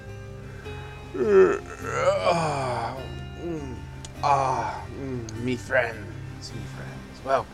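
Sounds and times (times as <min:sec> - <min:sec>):
person yawning with groaning sighing glides: 0:01.1 - 0:05.4
speech: 0:01.2 - 0:02.1, 0:05.5 - 0:07.5.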